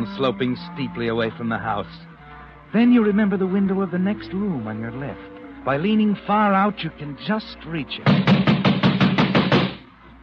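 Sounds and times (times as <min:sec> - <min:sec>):
speech: 0:00.1 - 0:02.1, 0:02.7 - 0:08.4
heavy pounding on a door to break it down: 0:08.1 - 0:09.8.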